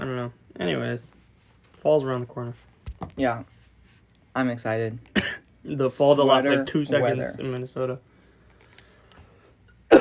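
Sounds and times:
speech: 0.3s - 1.2s, 1.8s - 3.6s, 4.4s - 8.1s
single sharp loud cough: 5.1s - 5.5s.

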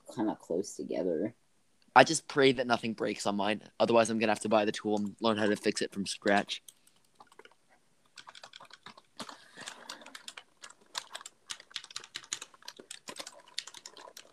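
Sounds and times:
speech: 0.2s - 1.4s, 2.0s - 6.7s
computer keyboard typing: 4.5s - 14.3s.

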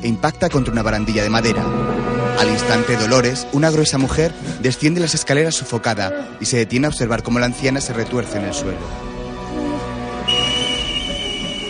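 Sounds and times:
speech: 0.0s - 9.1s
kettle whistling on the stove: 10.3s - 11.6s.

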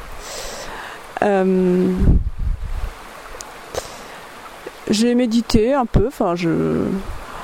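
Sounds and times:
flowing river water: 0.0s - 7.4s
speech: 1.2s - 2.2s, 4.9s - 7.2s
wind rumble on the microphone: 1.6s - 3.0s, 6.8s - 7.4s.

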